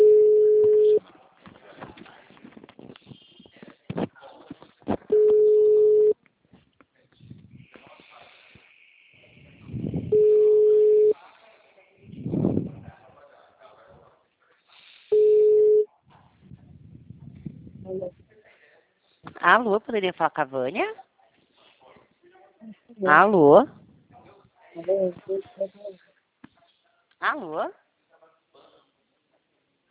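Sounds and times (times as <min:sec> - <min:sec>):
telephone ringback tone as a call rings out: 0:00.0 - 0:01.0, 0:05.1 - 0:06.2, 0:10.1 - 0:11.2, 0:15.2 - 0:15.8
voices talking quietly: 0:00.0 - 0:29.8
speech: 0:19.5 - 0:21.0, 0:23.0 - 0:23.8, 0:24.9 - 0:26.0, 0:27.2 - 0:27.8.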